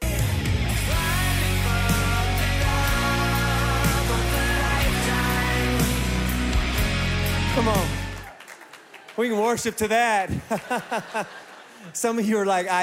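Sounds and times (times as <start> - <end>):
pop rock song with full band playing on the radio: 0.0 - 8.3
speech: 9.2 - 12.8
laughter: 10.0 - 12.0.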